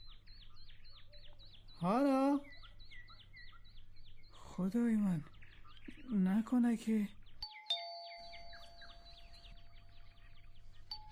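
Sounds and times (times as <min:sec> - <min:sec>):
speech: 0:01.8 - 0:02.5, 0:04.6 - 0:05.4, 0:06.1 - 0:07.2
doorbell chime: 0:07.4 - 0:10.1, 0:10.9 - 0:11.1.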